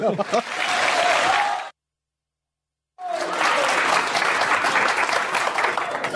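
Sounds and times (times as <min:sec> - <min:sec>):
speech: 0:00.0 - 0:00.8
large audience applause: 0:00.0 - 0:01.7, 0:03.0 - 0:06.1.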